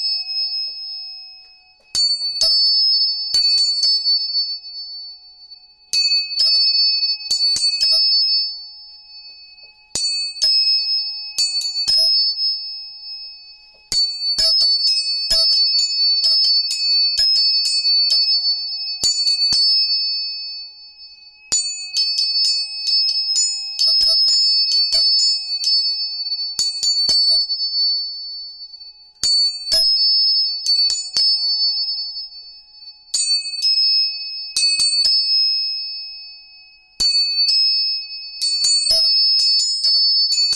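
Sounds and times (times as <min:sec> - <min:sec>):
three tuning forks ringing with pure tones: 0:00.0 - 0:40.5.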